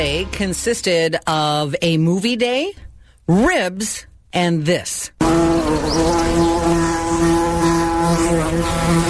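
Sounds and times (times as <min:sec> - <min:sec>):
speech: 0:00.0 - 0:07.3, 0:08.2 - 0:09.0
bees buzzing in a loud steady drone: 0:05.2 - 0:09.0.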